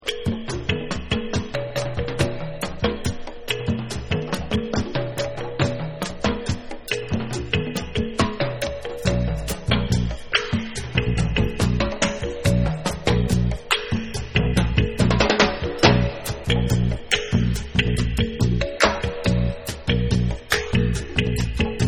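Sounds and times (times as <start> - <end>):
drum song: 0.0 - 21.8.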